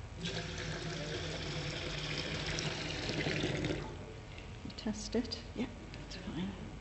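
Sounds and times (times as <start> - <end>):
warm water pouring into a basin: 0.2 - 4.0
speech: 4.9 - 6.7.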